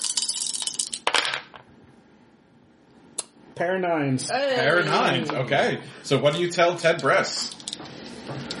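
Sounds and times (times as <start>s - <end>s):
dice clattering across a hard table surface: 0.0s - 1.6s
speech: 3.6s - 7.9s.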